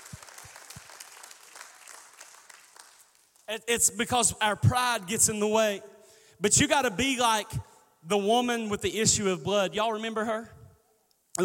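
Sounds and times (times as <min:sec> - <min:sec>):
faint sparse applause from audience: 0:00.0 - 0:03.6
speech: 0:03.5 - 0:10.6.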